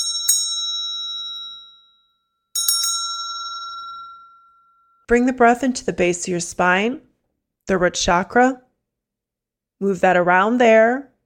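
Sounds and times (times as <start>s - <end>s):
bright bell struck with a sustained metallic tone: 0.0s - 5.1s
speech: 5.1s - 7.1s, 7.7s - 8.6s, 9.8s - 11.1s.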